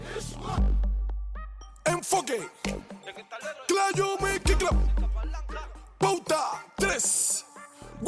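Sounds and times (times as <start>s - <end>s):
Cuban reparto music: 1.4s - 8.0s
reparto singer singing melodic vocal: 1.9s - 8.0s.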